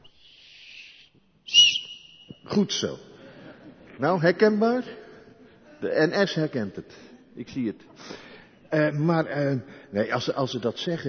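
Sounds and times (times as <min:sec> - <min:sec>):
small hand whistle being blown: 0:00.0 - 0:02.5
speech: 0:02.6 - 0:03.1, 0:04.0 - 0:05.0, 0:05.8 - 0:11.0.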